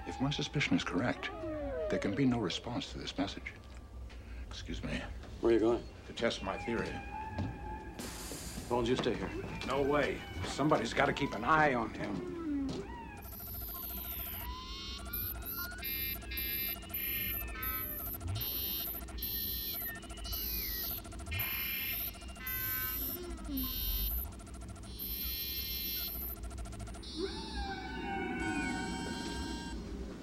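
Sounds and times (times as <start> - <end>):
speech: 0.1 - 3.7, 4.6 - 7.6, 8.7 - 12.3
humpback whale song: 12.3 - 29.9
pulsing high tones: 13.1 - 29.9.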